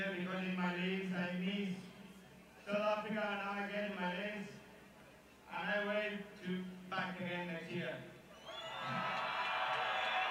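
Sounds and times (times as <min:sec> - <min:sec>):
speech: 0:00.0 - 0:02.0, 0:02.7 - 0:04.6, 0:05.5 - 0:08.2
crowd cheering and whooping at a freestyle show in South Africa: 0:08.3 - 0:10.2.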